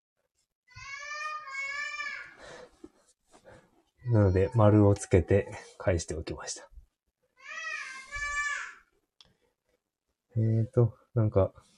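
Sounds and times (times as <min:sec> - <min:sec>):
young child crying wail, high-pitched and tonal: 0:00.7 - 0:02.5, 0:04.0 - 0:04.8, 0:07.4 - 0:08.9
speech: 0:04.0 - 0:06.7, 0:10.4 - 0:11.7.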